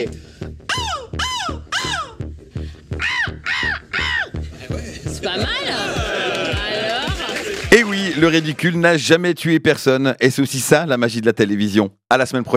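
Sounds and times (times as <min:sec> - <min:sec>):
person imitating a seagull cry at a seagull-cry contest: 0:00.7 - 0:02.2, 0:03.0 - 0:04.4
laughter: 0:03.5 - 0:08.6
speech: 0:08.2 - 0:12.5.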